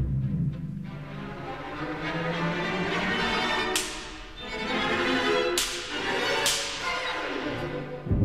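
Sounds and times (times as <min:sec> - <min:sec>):
full orchestral music: 0:00.0 - 0:08.2
orchestral whip cracks: 0:03.7 - 0:04.4, 0:05.5 - 0:07.3.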